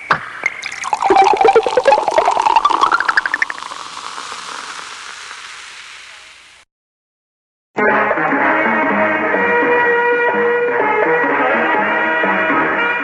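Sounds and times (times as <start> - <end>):
cola soda bottle popping open: 0.0 - 5.2
cola fizzing hiss: 0.0 - 6.6
cola glugging pour into a glass: 0.4 - 5.8
music: 7.8 - 13.0.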